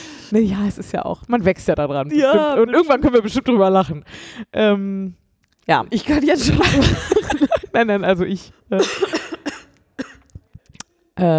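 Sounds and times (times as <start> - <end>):
speech: 0.3 - 9.2, 11.2 - 11.3
laughter: 6.5 - 7.8
person coughing: 8.8 - 10.4
throat clearing: 9.0 - 10.5.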